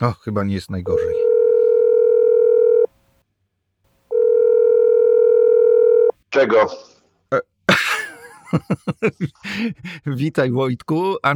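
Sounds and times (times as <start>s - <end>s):
speech: 0.0s - 1.3s, 6.4s - 7.9s, 8.5s - 11.3s
mobile phone ringback tone while placing a call: 1.1s - 2.9s, 4.1s - 6.2s
laughter: 7.7s - 10.1s.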